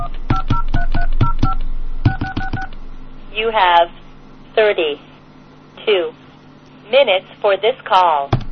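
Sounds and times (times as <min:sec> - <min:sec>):
telephone keypad touch-tone dialing beeps: 0:00.0 - 0:02.7
speech: 0:03.4 - 0:04.0, 0:04.6 - 0:05.1, 0:05.8 - 0:06.2, 0:06.9 - 0:08.4.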